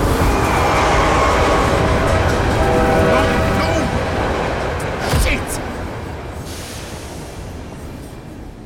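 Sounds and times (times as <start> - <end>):
freight train speeding past with rumbling wheels and metallic rattling: 0.0 - 8.6.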